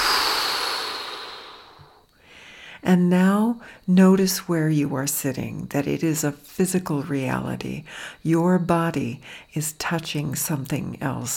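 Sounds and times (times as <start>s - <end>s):
deep breath exhaled through the mouth: 0.0s - 2.8s
speech: 2.8s - 11.3s.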